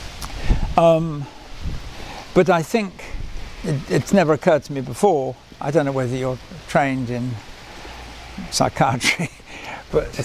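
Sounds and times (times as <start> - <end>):
wind buffeting an outdoor microphone: 0.0 - 4.0
speech: 0.8 - 3.0, 3.6 - 7.5, 8.4 - 10.2.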